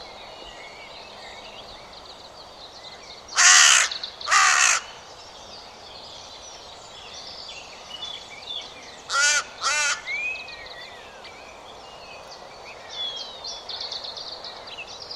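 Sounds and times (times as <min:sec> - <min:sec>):
harsh buzzy bird caws: 0:03.4 - 0:05.0, 0:09.1 - 0:10.1.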